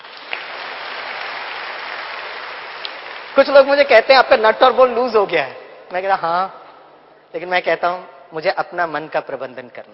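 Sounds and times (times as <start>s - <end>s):
crowd applause: 0.0s - 3.4s
speech: 3.4s - 6.6s, 7.3s - 9.9s.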